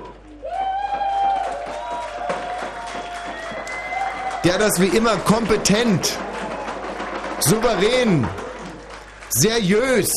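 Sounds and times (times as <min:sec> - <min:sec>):
cheering voices in a pub: 0:00.0 - 0:10.1
pub crowd applause: 0:00.0 - 0:10.1
speech: 0:04.4 - 0:06.2, 0:07.4 - 0:08.4, 0:09.3 - 0:10.1.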